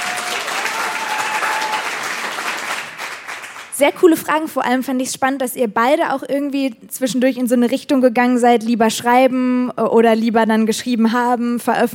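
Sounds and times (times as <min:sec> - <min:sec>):
audience clapping: 0:00.0 - 0:03.9
speech: 0:03.8 - 0:11.9.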